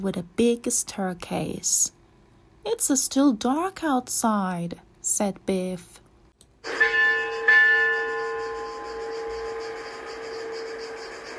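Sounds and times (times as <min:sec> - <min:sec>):
speech: 0:00.0 - 0:02.0, 0:02.6 - 0:06.0
bell ringing with a long metallic tone: 0:06.6 - 0:11.3.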